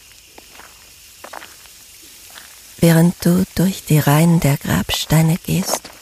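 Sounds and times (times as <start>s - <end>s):
soft footsteps crunching over gravel: 0.0s - 2.7s, 4.8s - 6.0s
steady hiss: 0.0s - 6.0s
speech: 2.8s - 6.0s.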